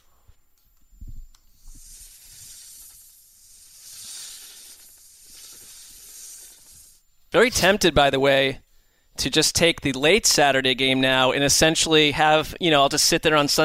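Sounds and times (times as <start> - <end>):
snake hiss sound effect: 1.6 - 7.0
speech: 7.4 - 8.6, 9.2 - 13.6.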